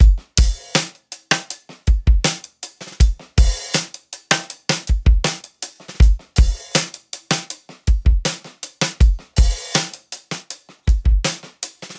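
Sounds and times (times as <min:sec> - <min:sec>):
dry acoustic drums: 0:00.0 - 0:11.9.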